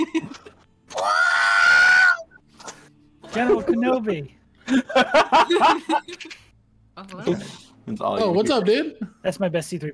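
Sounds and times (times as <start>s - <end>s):
person imitating a falling movie scream: 0.9s - 2.3s
speech: 3.4s - 6.4s, 7.0s - 9.9s
laughter: 4.6s - 6.5s.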